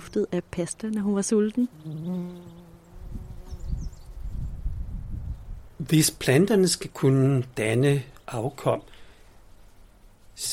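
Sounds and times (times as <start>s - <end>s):
bee buzzing in flight: 0.0s - 4.4s
low uneven outdoor noise: 0.0s - 10.5s
speech: 0.1s - 2.6s, 5.8s - 9.0s, 10.4s - 10.5s
soft rustling: 9.0s - 10.5s.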